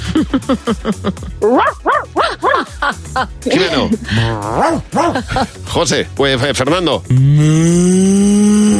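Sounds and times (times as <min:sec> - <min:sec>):
laughter: 0:00.0 - 0:01.5, 0:02.1 - 0:04.3, 0:05.0 - 0:05.6
speech: 0:00.2 - 0:08.4
person imitating a dog barking and howling: 0:01.4 - 0:02.6, 0:04.3 - 0:05.2.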